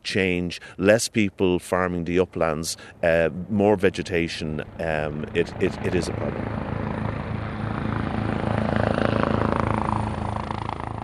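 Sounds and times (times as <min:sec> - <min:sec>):
speech: 0:00.1 - 0:06.6
firefighting helicopter flying with rotor thump and engine whine: 0:02.4 - 0:11.0.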